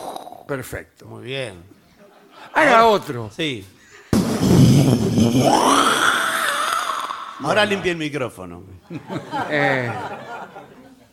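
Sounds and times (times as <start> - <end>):
speech: 0.5 - 1.8, 2.4 - 3.8, 4.4 - 6.1, 7.4 - 10.3
person vocally imitating a loud thunderclap: 4.2 - 7.8
laughter: 8.8 - 11.1.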